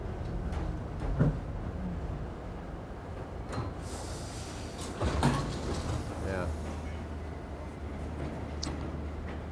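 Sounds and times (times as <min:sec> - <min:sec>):
subway car rumbling: 0:00.0 - 0:09.5
subway doors sliding with clunks and a hiss: 0:03.4 - 0:06.8.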